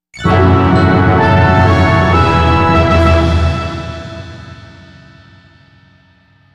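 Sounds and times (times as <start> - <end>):
guitar: 0.2 - 5.3.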